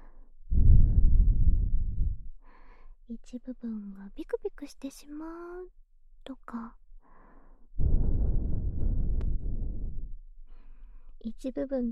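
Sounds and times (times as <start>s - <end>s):
breath blown softly toward the listener: 0.5s - 2.3s, 7.8s - 11.0s
speech: 3.1s - 6.8s, 11.2s - 11.8s.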